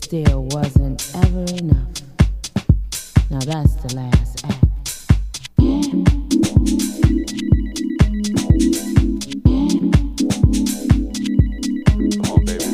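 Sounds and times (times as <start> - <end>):
speech: 0.1 - 2.1, 3.3 - 4.6
melodic electronic phone ringtone over a thumping beat: 5.9 - 12.7.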